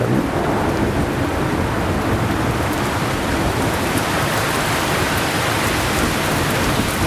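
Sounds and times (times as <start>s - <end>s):
deep continuous rumble: 0.0s - 2.6s
heavy rain pouring down: 0.0s - 7.0s.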